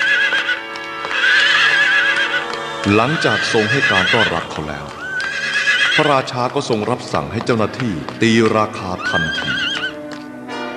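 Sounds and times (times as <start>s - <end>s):
herd of horses neighing while driven for sale: 0.0s - 6.5s, 9.0s - 10.0s
horse hooves clip-clopping: 0.0s - 10.4s
speech: 2.9s - 5.0s, 6.0s - 9.7s.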